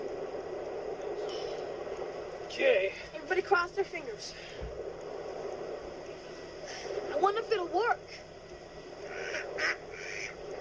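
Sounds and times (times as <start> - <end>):
faint low hum: 0.0 - 10.5
speech: 2.5 - 4.8, 7.2 - 8.3, 9.6 - 9.8
duck quacking: 9.1 - 10.3.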